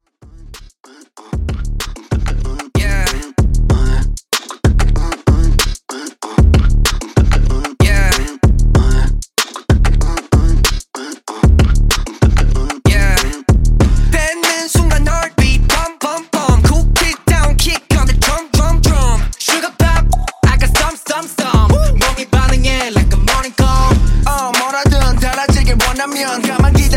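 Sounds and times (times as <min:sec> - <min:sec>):
beatbox pop beat with bass: 0:00.2 - 0:26.9.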